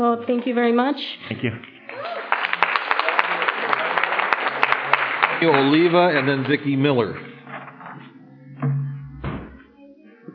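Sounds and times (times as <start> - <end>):
speech: 0.0 - 2.2, 5.4 - 7.4
audience clapping: 1.8 - 7.3.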